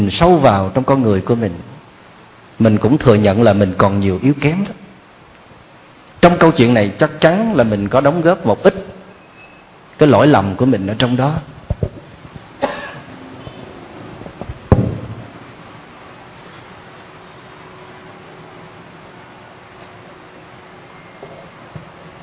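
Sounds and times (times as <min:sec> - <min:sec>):
speech: 0:00.0 - 0:01.7, 0:02.6 - 0:04.8, 0:06.2 - 0:09.0, 0:10.0 - 0:11.6
faint steady hum: 0:00.0 - 0:22.2
person coughing sharply and harshly: 0:12.6 - 0:13.1.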